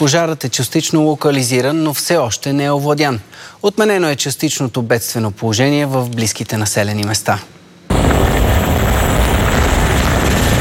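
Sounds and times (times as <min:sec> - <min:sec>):
speech: 0:00.0 - 0:07.6
Cougar helicopter rotor and engine roaring while fighting a forest fire: 0:07.9 - 0:10.5.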